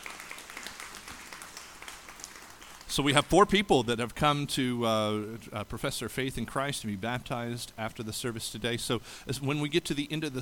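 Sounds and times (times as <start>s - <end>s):
church congregation clapping: 0.0s - 3.3s
speech: 2.9s - 10.4s.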